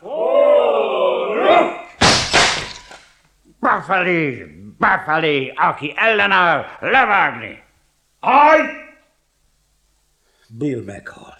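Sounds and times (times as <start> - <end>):
raised voice: 0.0 - 1.9, 3.6 - 9.1
speech: 3.8 - 7.6, 8.2 - 8.8, 10.5 - 11.3.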